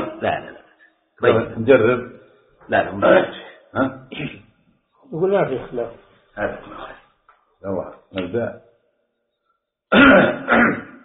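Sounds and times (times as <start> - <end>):
speech: 0.2 - 0.6, 1.2 - 4.4, 5.1 - 7.0, 7.6 - 8.6, 9.9 - 10.8
man clearing his throat: 3.8 - 4.4, 9.9 - 11.0.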